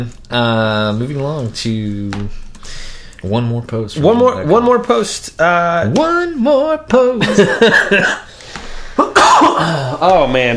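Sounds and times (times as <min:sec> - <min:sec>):
speech: 0:00.0 - 0:08.4, 0:09.0 - 0:10.5
laughter: 0:07.0 - 0:08.3
person coughing: 0:07.7 - 0:08.3, 0:08.9 - 0:10.0.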